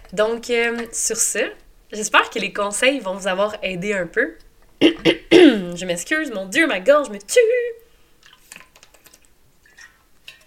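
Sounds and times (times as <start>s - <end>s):
speech: 0.1s - 7.8s
person sipping water: 8.2s - 10.4s
small slurping sounds: 8.2s - 10.4s.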